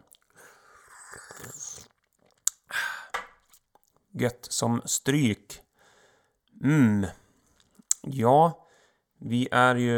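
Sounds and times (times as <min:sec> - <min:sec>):
person sipping homemade mead: 0:00.0 - 0:03.9
swallowing: 0:00.0 - 0:03.9
speech: 0:04.2 - 0:05.6, 0:06.6 - 0:07.2, 0:08.1 - 0:08.6, 0:09.2 - 0:09.9.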